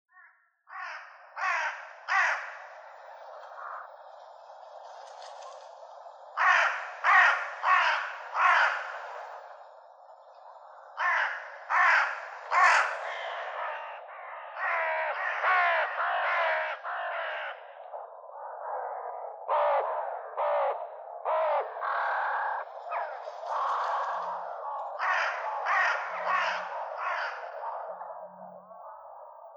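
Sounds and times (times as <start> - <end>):
crow cawing: 0.1 - 3.8, 6.4 - 9.6, 10.8 - 17.9, 19.5 - 19.8, 20.4 - 28.0.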